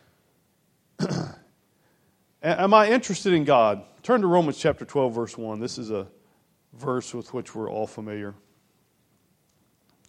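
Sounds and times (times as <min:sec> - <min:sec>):
short rough cough-like throat clearing: 0:01.0 - 0:01.5
speech: 0:02.4 - 0:08.5.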